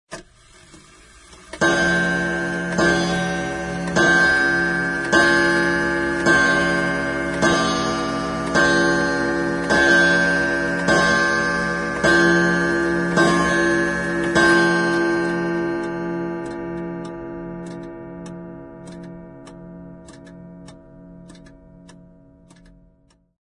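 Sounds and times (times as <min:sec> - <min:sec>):
pendulum clock chiming as a mobile phone ringtone: 0:01.6 - 0:23.2.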